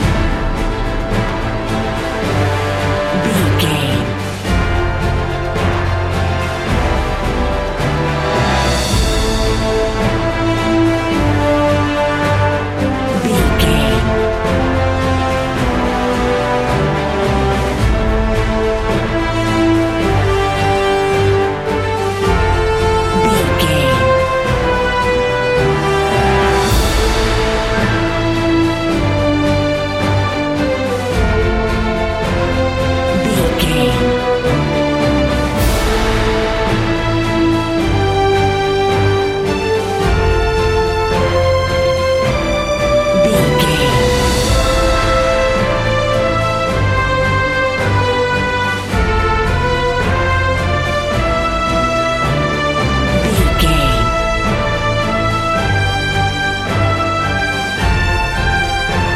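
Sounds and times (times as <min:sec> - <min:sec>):
epic cinematic march music loop: 0:00.0 - 0:59.1.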